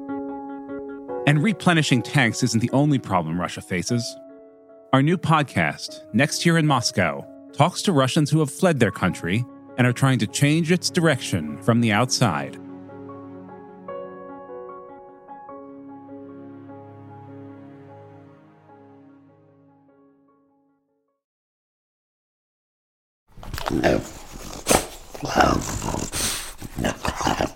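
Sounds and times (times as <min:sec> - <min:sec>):
tonal music: 0:00.0 - 0:20.6
speech: 0:01.3 - 0:04.2, 0:04.9 - 0:12.6, 0:23.8 - 0:24.1
French bulldog growling and snorting: 0:23.4 - 0:27.5.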